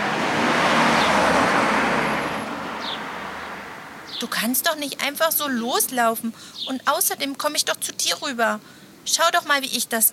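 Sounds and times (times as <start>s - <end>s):
car driving past on a nearby street: 0.0s - 4.2s
speech: 4.2s - 10.1s.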